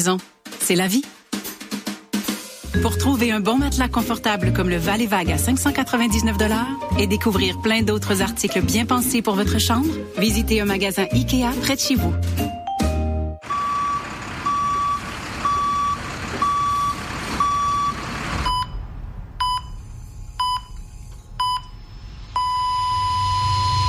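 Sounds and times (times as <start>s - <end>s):
speech: 0.0s - 1.2s, 2.7s - 12.6s
rumbling vehicle engine: 13.4s - 23.8s
vehicle reversing beeper on a construction site: 13.4s - 23.8s.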